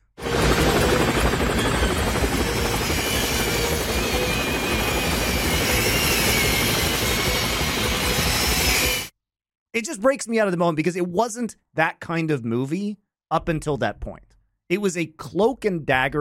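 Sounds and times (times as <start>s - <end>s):
helicopter rotor blades whirring inside the Channel Tunnel: 0.1s - 9.1s
speech: 9.8s - 16.1s.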